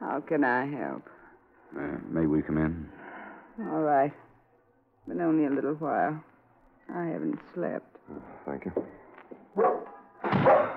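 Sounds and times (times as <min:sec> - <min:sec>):
speech: 0:00.2 - 0:03.0, 0:03.6 - 0:04.2, 0:05.0 - 0:06.3, 0:06.9 - 0:09.0, 0:09.6 - 0:10.7
old dog barking: 0:09.6 - 0:10.7.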